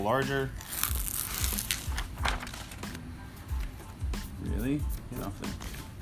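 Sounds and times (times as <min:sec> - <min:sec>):
speech: 0:00.0 - 0:00.9, 0:04.4 - 0:05.8
skateboard grip tape peeled off a deck: 0:00.6 - 0:03.0.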